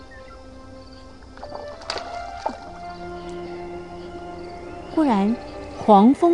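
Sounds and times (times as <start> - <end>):
steady watery wash: 0.0 - 6.3
wooden boat creaking and groaning as it rocks on the water: 1.1 - 6.3
speech: 5.0 - 6.3.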